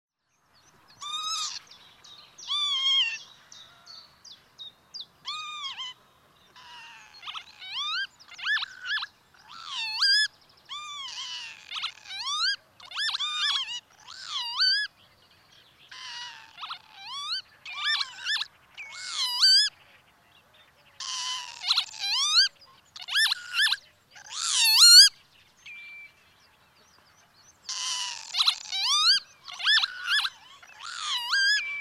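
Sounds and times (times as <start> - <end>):
northern lapwing calling: 1.0 - 1.7, 2.4 - 3.9, 5.2 - 15.0, 15.9 - 19.8, 21.0 - 25.2, 27.6 - 31.7.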